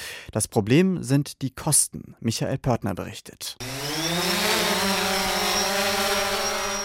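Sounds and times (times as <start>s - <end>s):
speech: 0.3s - 4.4s
quadcopter drone buzzing as it lifts off: 3.6s - 6.8s.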